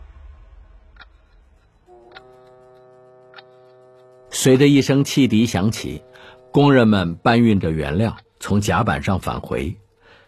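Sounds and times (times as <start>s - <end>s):
steady tonal hum: 0.9s - 10.2s
clock ticking: 2.0s - 10.0s
speech: 4.4s - 9.8s.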